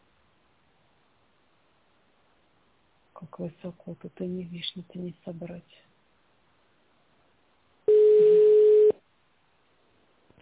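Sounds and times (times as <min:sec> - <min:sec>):
speech: 0:03.2 - 0:05.9
telephone line tone while waiting to be connected: 0:07.9 - 0:09.0.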